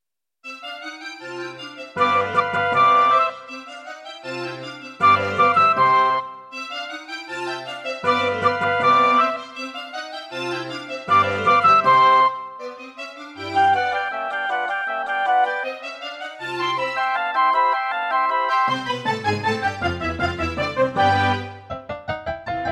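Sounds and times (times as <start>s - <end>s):
classical music on a Roland Edirol SD-20 in GS mode: 0.4s - 22.7s.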